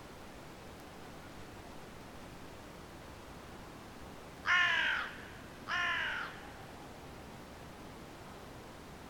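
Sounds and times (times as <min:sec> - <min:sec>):
Carrion crow Corvus corone cawing: 0:04.4 - 0:06.5.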